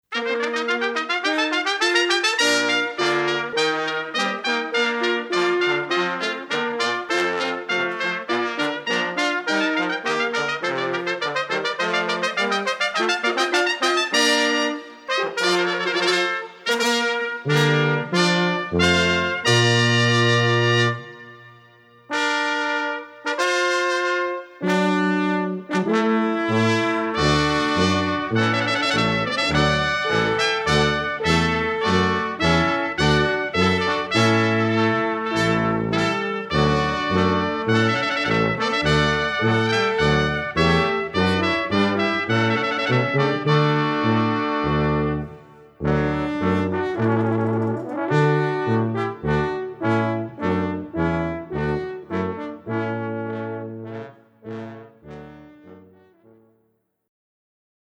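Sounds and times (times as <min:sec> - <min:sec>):
trumpet fanfare: 0:00.1 - 0:56.5.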